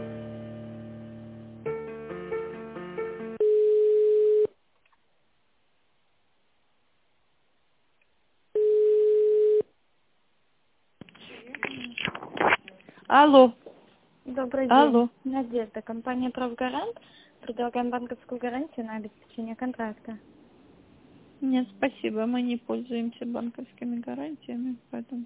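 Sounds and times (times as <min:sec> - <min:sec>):
telephone ringback tone while an office call is transferred: 0:03.4 - 0:04.5, 0:08.6 - 0:09.6
speech: 0:13.1 - 0:13.6, 0:14.4 - 0:20.3, 0:21.4 - 0:25.2.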